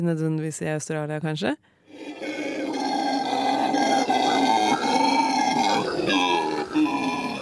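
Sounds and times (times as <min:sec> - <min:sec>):
speech: 0:00.0 - 0:02.3
howler monkey loud sustained guttural grunting roar: 0:01.9 - 0:07.4.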